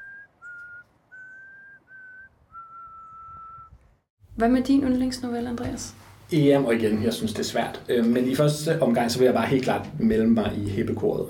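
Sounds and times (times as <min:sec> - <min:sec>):
person whistling a tune: 0:00.0 - 0:03.8
faint hiss: 0:04.2 - 0:11.2
speech: 0:04.4 - 0:11.2.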